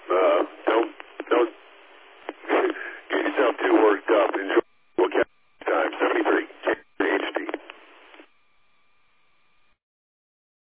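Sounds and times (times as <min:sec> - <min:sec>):
radio interference on a two-way radio repeater frequency: 0:00.0 - 0:08.3
sharp radio clicks: 0:00.4 - 0:01.5, 0:02.2 - 0:08.3.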